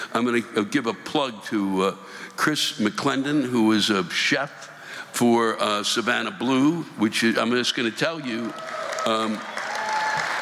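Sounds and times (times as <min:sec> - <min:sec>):
speech: 0:00.2 - 0:09.6
audience applause: 0:08.4 - 0:10.4.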